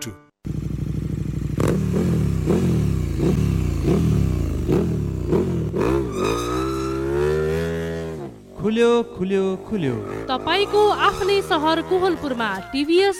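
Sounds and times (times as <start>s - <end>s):
scooter engine revving: 0.5s - 8.5s, 9.3s - 12.9s.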